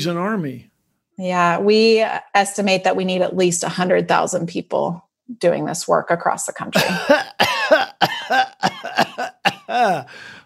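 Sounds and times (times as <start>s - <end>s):
speech: 0.0s - 7.5s, 9.7s - 10.3s
loud raspy coughs: 6.8s - 10.3s.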